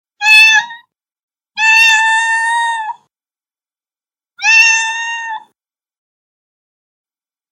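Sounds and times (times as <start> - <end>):
kitten meowing: 0.2 - 0.8, 1.6 - 3.0, 4.4 - 5.6.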